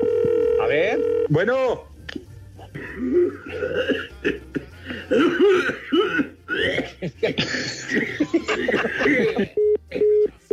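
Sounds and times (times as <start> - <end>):
telephone ringing with electronic tone pulses: 0.0 - 1.3
speech: 0.7 - 1.9, 3.0 - 6.3, 7.1 - 9.4
laughter: 2.7 - 10.3.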